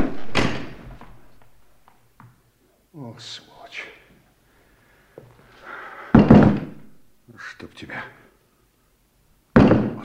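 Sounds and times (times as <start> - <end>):
fainter door knocks and rattles as it settles: 0.0 - 1.2, 6.2 - 6.8, 9.6 - 10.0
door banging shut: 0.0 - 1.5, 6.2 - 6.9
speech: 3.2 - 3.9.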